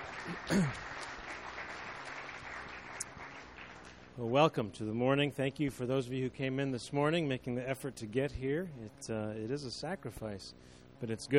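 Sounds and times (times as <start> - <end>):
audience applause: 0.0 - 3.9
speech: 0.2 - 1.0, 4.2 - 11.3.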